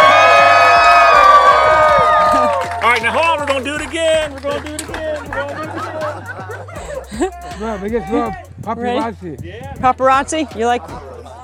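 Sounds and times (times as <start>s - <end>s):
group of people cheering and whooping: 0.0s - 8.5s
laughter: 0.0s - 11.4s
speech: 7.2s - 11.1s.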